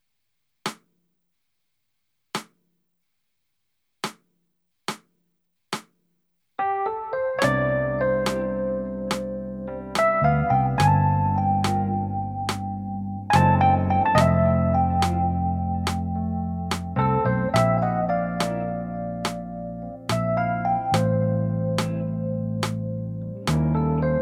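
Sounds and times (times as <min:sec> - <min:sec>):
concert backing track: 0:06.7 - 0:24.1.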